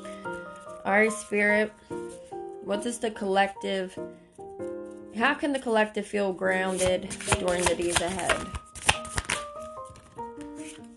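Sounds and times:
speech: 0.9s - 2.0s, 2.6s - 4.2s, 5.2s - 8.6s
tarot cards being shuffled by hand: 6.6s - 10.9s.

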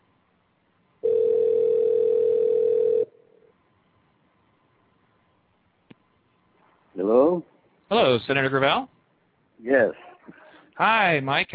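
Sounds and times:
ringback tone from outgoing phone call: 1.0s - 3.1s
speech: 7.9s - 9.0s, 9.6s - 11.5s.

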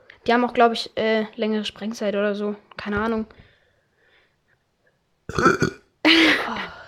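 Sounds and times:
speech: 0.2s - 3.4s, 5.3s - 5.8s
person burping: 5.3s - 6.5s.

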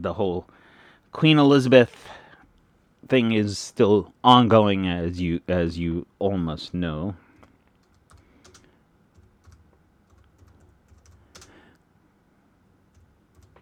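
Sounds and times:
speech: 0.0s - 2.2s, 3.0s - 7.2s
typing on a computer keyboard: 7.4s - 11.6s, 12.9s - 13.5s.

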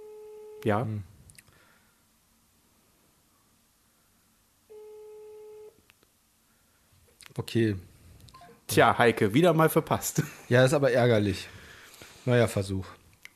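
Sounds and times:
quiet hiss: 0.0s - 13.3s
speech: 0.6s - 1.1s, 7.4s - 7.9s, 8.7s - 11.6s, 12.2s - 13.0s
steady mid-pitched telephone line tone: 4.7s - 5.8s.

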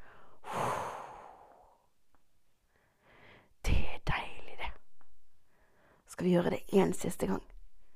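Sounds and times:
deep exhale during breathing exercise: 0.0s - 1.9s
soft breath: 0.0s - 1.9s, 2.7s - 3.6s, 5.4s - 6.1s
speech: 6.2s - 7.6s.

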